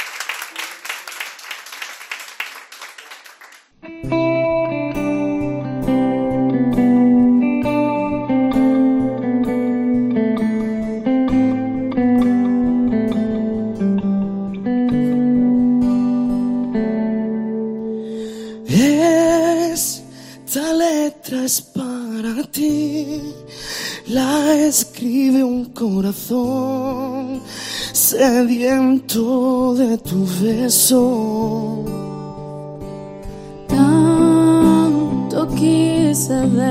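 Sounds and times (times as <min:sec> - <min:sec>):
mellow pop song on the radio: 0:03.9 - 0:36.6
person singing over accompaniment: 0:18.2 - 0:31.9, 0:33.7 - 0:36.6
speech: 0:30.4 - 0:32.0.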